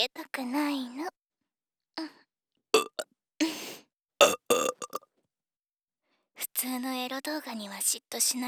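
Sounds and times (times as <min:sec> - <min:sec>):
speech: 0:00.4 - 0:01.2, 0:06.8 - 0:08.4
woman burping: 0:02.8 - 0:03.6, 0:04.2 - 0:05.0.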